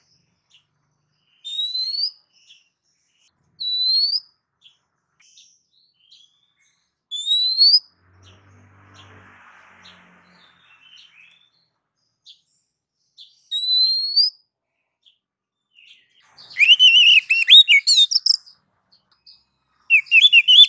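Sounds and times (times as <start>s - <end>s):
female oriental magpie-robin calling to a male: 1.4s - 2.6s, 3.6s - 4.3s, 7.1s - 7.9s, 13.4s - 14.4s, 16.4s - 18.5s, 19.9s - 20.6s.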